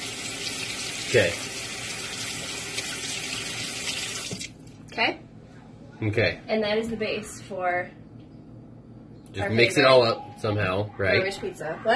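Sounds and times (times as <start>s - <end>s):
lukewarm tap water running into a cup for dough: 0.0s - 4.9s
speech: 1.1s - 1.5s, 5.0s - 5.2s, 6.0s - 8.0s, 9.3s - 11.9s.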